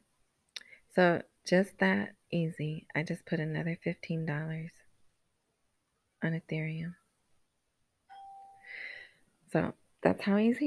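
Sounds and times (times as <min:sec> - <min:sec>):
speech: 0:01.0 - 0:04.8, 0:06.2 - 0:07.0, 0:09.5 - 0:10.6
two-note electronic phone app notification chime: 0:08.1 - 0:08.8.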